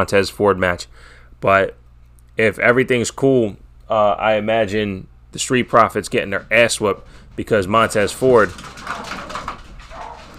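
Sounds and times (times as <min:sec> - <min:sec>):
speech: 0:00.0 - 0:01.8, 0:02.4 - 0:09.2
dog whimpering and barking: 0:08.8 - 0:10.3.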